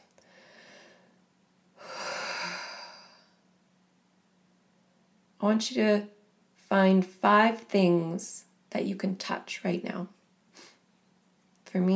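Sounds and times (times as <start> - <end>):
person taking a deep breath: 0.2 - 1.2, 1.8 - 3.4
speech: 5.4 - 6.1, 6.7 - 10.2, 11.7 - 11.9.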